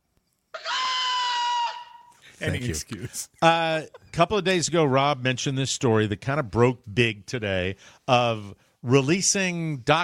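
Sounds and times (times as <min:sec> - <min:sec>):
peacock screaming: 0:00.5 - 0:02.2
speech: 0:02.4 - 0:10.0.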